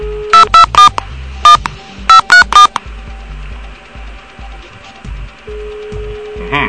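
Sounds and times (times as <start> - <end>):
low steady hum: 0.0 - 6.6
touch-tone beeps of a telephone number being redialed: 0.4 - 2.8.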